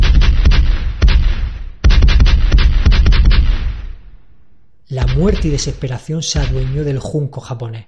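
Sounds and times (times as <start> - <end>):
cannon fire from a Spanish galley's guns: 0.0 - 4.3, 5.0 - 7.0
speech: 5.2 - 7.8.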